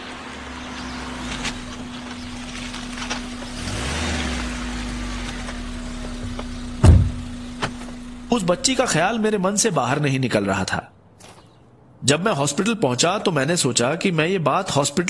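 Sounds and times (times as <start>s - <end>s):
government car engine rumbling as it pulls away from a hospital: 0.0s - 10.1s
sharp knock: 6.8s - 7.2s
speech: 8.3s - 10.9s, 12.0s - 15.0s.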